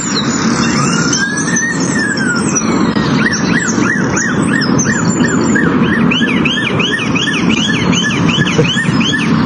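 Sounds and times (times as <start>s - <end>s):
constant outdoor rumble: 0.0s - 9.4s
bird mimicking a two-tone police siren: 0.5s - 9.4s.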